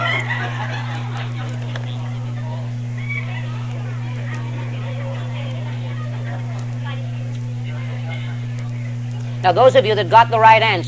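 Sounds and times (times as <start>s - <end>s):
flock of turkeys gobbling: 0.0s - 2.2s, 3.0s - 5.2s
laughter: 0.0s - 9.4s
steady low electrical hum: 0.0s - 10.8s
speech: 9.4s - 10.8s.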